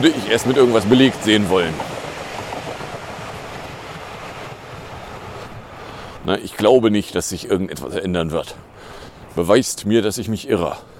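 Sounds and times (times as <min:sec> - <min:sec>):
speech: 0:00.0 - 0:01.9, 0:06.3 - 0:10.9
subway train rumbling: 0:00.0 - 0:05.8.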